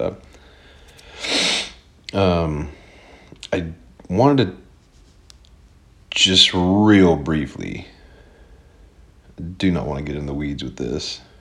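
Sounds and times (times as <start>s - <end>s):
speech: 0.0s - 0.3s, 2.1s - 2.8s, 3.5s - 4.6s, 6.2s - 7.9s, 9.4s - 11.3s
noisy intake of breath: 0.4s - 1.8s.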